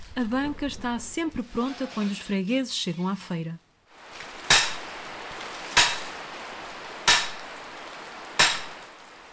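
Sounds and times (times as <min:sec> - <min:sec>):
speech: 0:00.2 - 0:03.6
steady hiss of falling rain: 0:03.8 - 0:09.3
hammers driving iron stakes into the ground: 0:04.5 - 0:05.0, 0:05.8 - 0:06.2, 0:07.1 - 0:07.5, 0:08.4 - 0:08.9.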